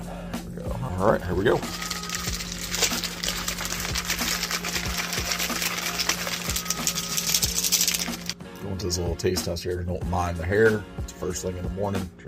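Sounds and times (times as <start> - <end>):
speech: 1.0 - 1.9, 8.8 - 12.2
drink mixer bottle of energy drink powder and water shaken: 1.5 - 8.4.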